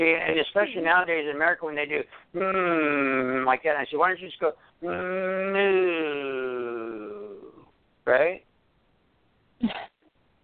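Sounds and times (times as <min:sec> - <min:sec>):
speech: 0:00.0 - 0:06.2, 0:08.1 - 0:08.5
short sharp vocal bursts: 0:02.1 - 0:03.5, 0:04.8 - 0:07.7
human voice imitating a cow mooing: 0:02.4 - 0:03.6, 0:04.8 - 0:07.7.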